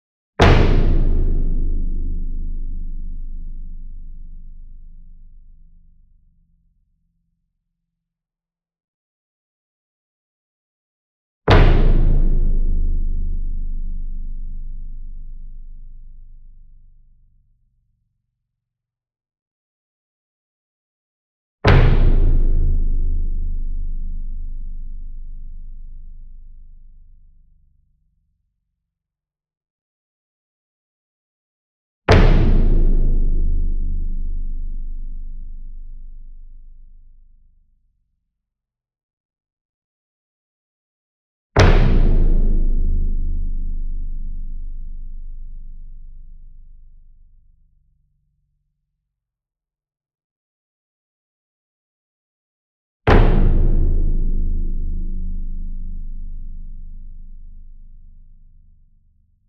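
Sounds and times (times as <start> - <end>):
40 inch concert bass drum flam with soft beater: 0.4 - 4.4, 11.5 - 15.9, 21.7 - 26.1, 32.1 - 36.4, 41.6 - 46.5, 53.1 - 57.6.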